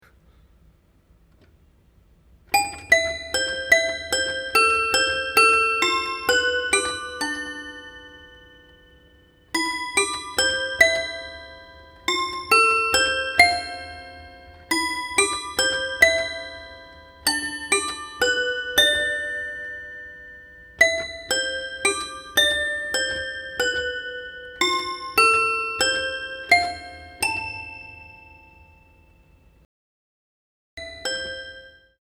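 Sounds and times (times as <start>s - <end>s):
toy piano: 2.5s - 29.4s, 30.8s - 32.0s.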